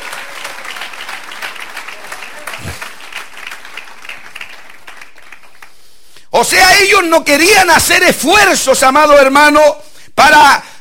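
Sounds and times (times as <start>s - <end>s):
audience clapping hands in applause: 0.0s - 5.8s
speech: 6.4s - 10.7s.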